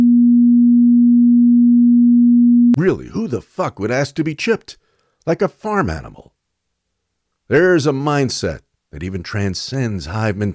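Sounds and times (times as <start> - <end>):
low steady pure tone: 0.0 - 3.0
speech: 2.8 - 6.3, 7.5 - 10.5.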